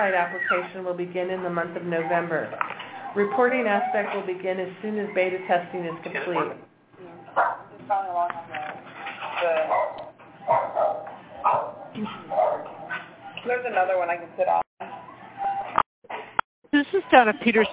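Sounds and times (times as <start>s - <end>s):
speech: 0.0s - 6.7s, 7.4s - 8.7s, 9.4s - 10.0s, 13.4s - 14.6s, 16.7s - 17.7s
dog barking and yipping through a tinny narrow-band phone line: 7.4s - 7.7s, 9.7s - 12.7s.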